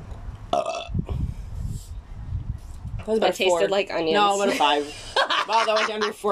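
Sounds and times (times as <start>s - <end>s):
low rumbling noise: 0.0s - 6.3s
throaty burp: 0.5s - 1.2s
speech: 3.1s - 6.3s
laughter: 4.4s - 6.3s.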